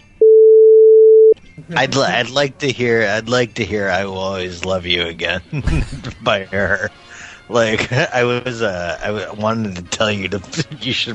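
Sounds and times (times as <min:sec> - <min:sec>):
telephone line tone after a number is dialed by accident: 0:00.2 - 0:01.4
laughter: 0:01.6 - 0:11.1
speech: 0:01.6 - 0:11.1.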